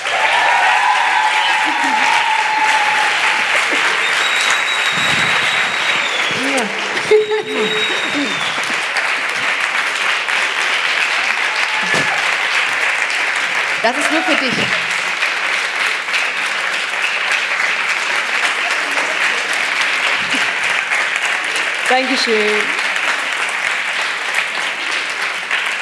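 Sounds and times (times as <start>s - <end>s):
audience shouts and whoops: 0.0s - 8.8s, 11.2s - 12.5s, 13.9s - 14.8s
studio audience applause welcoming a guest onto a TV show: 0.0s - 25.8s
laughter: 1.0s - 9.6s, 11.6s - 12.4s, 18.6s - 20.9s
speech: 13.8s - 14.9s, 22.0s - 22.8s.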